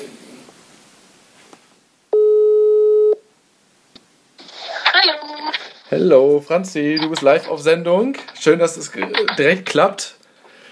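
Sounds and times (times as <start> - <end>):
quiet hiss: 0.0 - 10.7
telephone ringback tone: 2.2 - 3.2
speech: 5.9 - 10.2.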